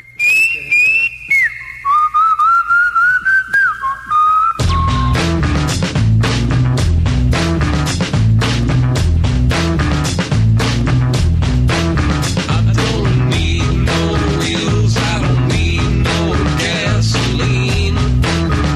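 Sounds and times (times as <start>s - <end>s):
whistled melody in a jazz song: 0.0s - 5.8s, 18.0s - 18.7s
full jazz band with drums playing: 4.6s - 18.7s.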